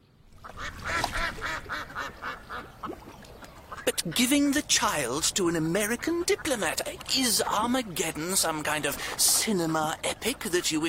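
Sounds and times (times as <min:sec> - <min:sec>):
ducks quacking: 0:00.4 - 0:10.8
speech: 0:04.0 - 0:10.8.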